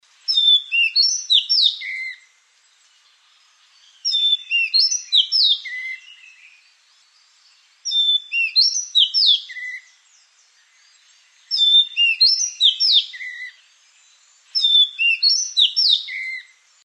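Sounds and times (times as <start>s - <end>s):
Madagascar magpie-robin: 0.3s - 2.2s, 3.8s - 6.6s, 7.8s - 10.0s, 10.7s - 13.6s, 14.5s - 16.5s.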